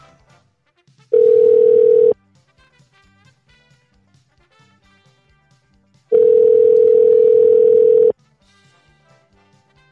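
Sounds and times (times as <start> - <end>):
phone ringback tone while calling: 1.2 - 2.2, 6.1 - 8.1.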